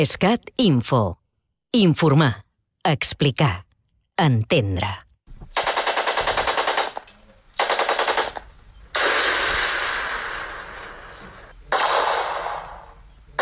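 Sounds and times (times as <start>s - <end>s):
speech: 0.0s - 3.6s, 4.2s - 5.0s
automatic gunfire at a Spanish Civil War battle reenactment in Vilamur: 5.6s - 10.3s, 11.7s - 13.4s.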